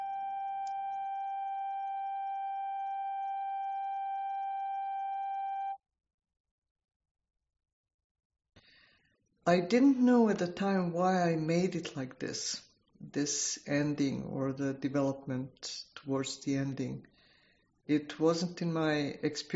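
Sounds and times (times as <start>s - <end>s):
steady electronic sine-wave tone: 0.0s - 5.8s
speech: 9.5s - 17.1s, 17.9s - 19.5s.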